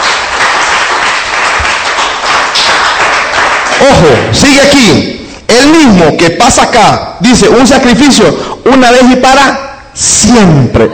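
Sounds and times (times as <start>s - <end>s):
church audience clapping hands during a sermon: 0.0s - 4.7s
speech: 3.8s - 10.9s.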